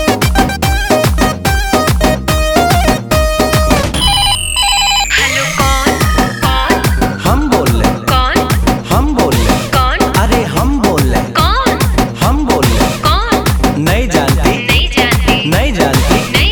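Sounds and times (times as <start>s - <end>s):
pulsing dance music with steady beat and synth tones: 0.0s - 16.4s
electronic telephone ring chirping: 4.0s - 6.6s.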